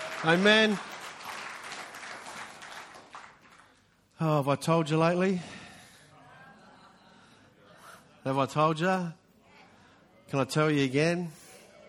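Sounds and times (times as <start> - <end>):
crowd applauding: 0.0 - 4.0
speech: 0.2 - 0.9, 4.2 - 5.6, 8.2 - 9.2, 10.3 - 11.4
laughter: 6.1 - 8.3.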